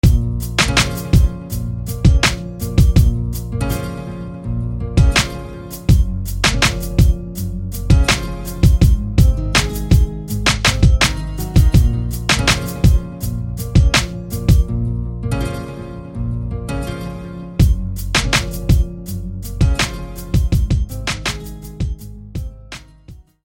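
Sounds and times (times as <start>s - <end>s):
harp guitar playing: 0.0s - 22.7s.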